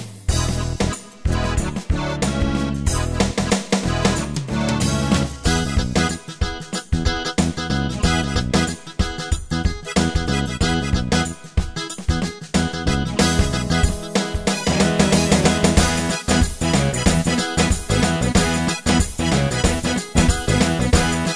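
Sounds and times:
Cajun preset style on a Yamaha QY70 sequencer: 0.3 - 21.3.

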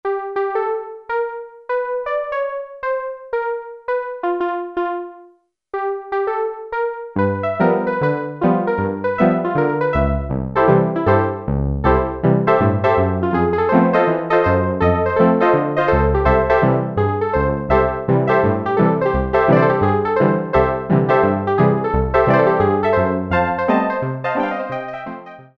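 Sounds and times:
ragtime on a Kawai SX-240 piano: 0.0 - 5.2, 5.8 - 25.5.

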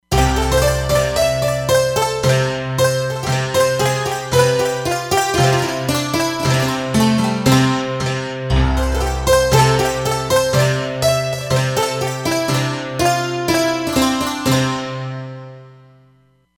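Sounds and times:
santur stack on a Roland Fantom XR: 0.0 - 16.3.

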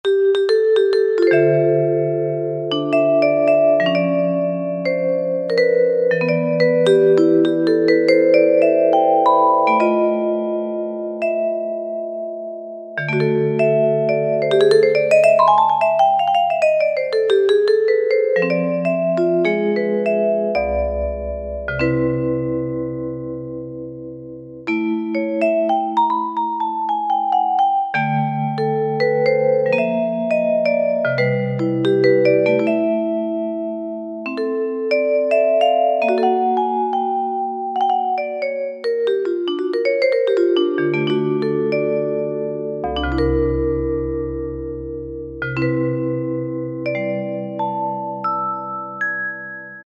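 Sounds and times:
jazz vibes voice on a Yamaha PSR-3000 keyboard: 0.0 - 23.7, 24.7 - 49.8.

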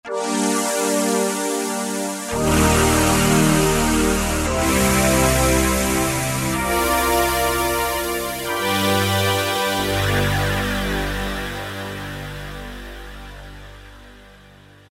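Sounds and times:
synthesizer factory preset: 0.0 - 14.8.

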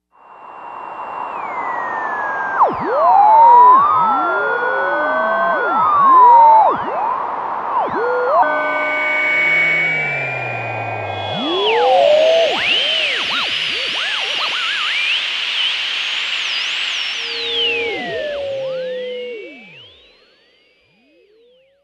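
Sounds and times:
Novation UltraNova synthesizer: 2.3 - 21.6
radio dial tuning: 9.3 - 20.1.

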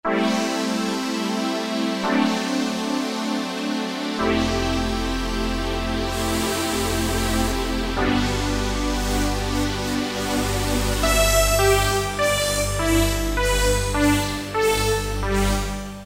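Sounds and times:
garage dance synth pad: 0.7 - 16.0.

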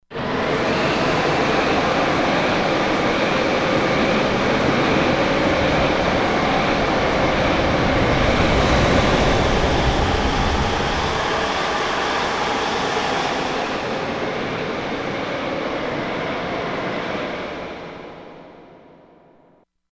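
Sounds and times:
storm: 0.1 - 18.9.

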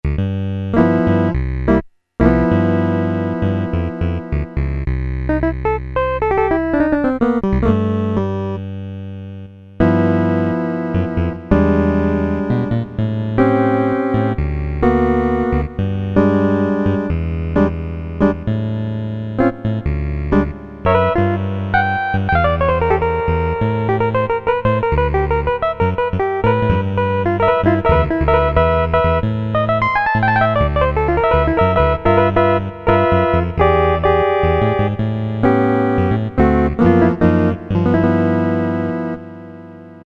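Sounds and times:
Casio MT-68 electric piano preset sounds: 0.0 - 40.0.

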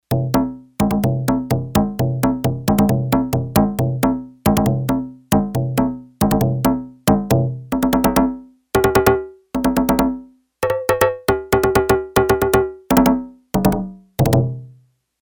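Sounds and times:
Yamaha TX802 hand drum: 0.0 - 14.6.

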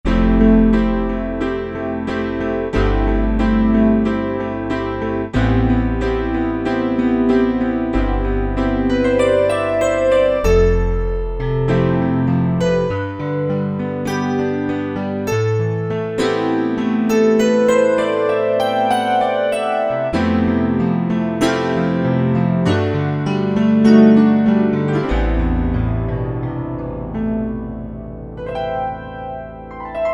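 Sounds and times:
MIDI grand piano: 0.0 - 30.1.

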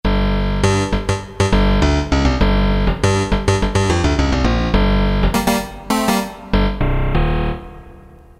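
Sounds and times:
Roland MT-32 synth bass: 0.1 - 8.2.

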